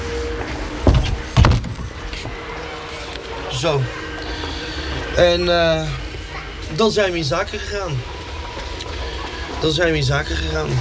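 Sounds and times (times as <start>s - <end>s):
café door being pulled shut: 0.0s - 4.5s
laughter: 0.0s - 10.7s
quiet hum: 0.0s - 10.7s
speech: 3.6s - 4.0s, 5.2s - 6.0s, 6.7s - 8.1s, 9.6s - 10.7s.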